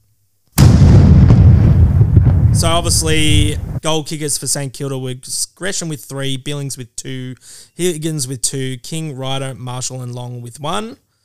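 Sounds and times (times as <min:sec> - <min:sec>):
cannon firing: 0:00.6 - 0:03.8
deep heavy rumbling roar: 0:00.6 - 0:03.8
heavy thump: 0:00.6 - 0:03.8
speech: 0:02.6 - 0:11.0.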